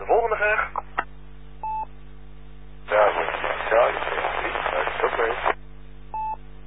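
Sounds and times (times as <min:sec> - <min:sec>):
loud rush of radio static: 0:00.0 - 0:00.9, 0:02.9 - 0:05.6.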